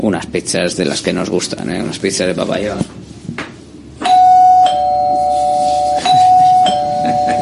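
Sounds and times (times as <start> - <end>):
speech: 0.0 - 3.0
doorbell ringing with a sustained electronic tone: 4.0 - 7.4.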